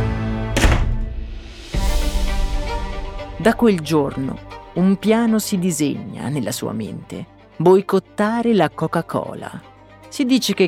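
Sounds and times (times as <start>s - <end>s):
steady musical background: 0.0s - 10.6s
door slamming shut: 0.4s - 2.0s
dull thump: 0.6s - 3.1s
speech: 3.4s - 10.6s.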